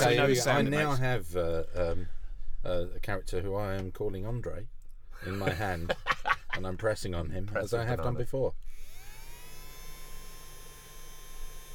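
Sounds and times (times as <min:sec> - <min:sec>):
speech: 0:00.0 - 0:08.8
laughter: 0:05.2 - 0:06.8
small electric nail dryer fan whirring: 0:08.6 - 0:11.7.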